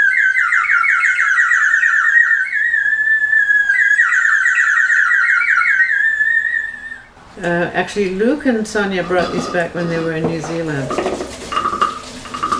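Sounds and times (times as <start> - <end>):
water-filled whistle blown with warbling bubbly trill: 0.0 - 7.1
speech: 7.4 - 11.2.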